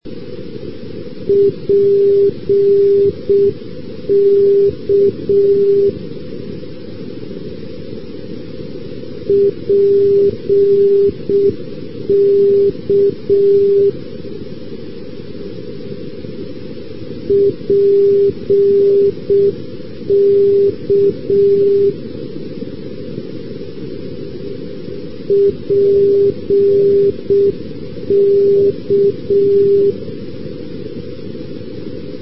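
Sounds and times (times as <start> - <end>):
non-directional radio beacon signal: 1.3 - 6.0, 9.3 - 14.0, 17.3 - 22.0, 25.3 - 30.0.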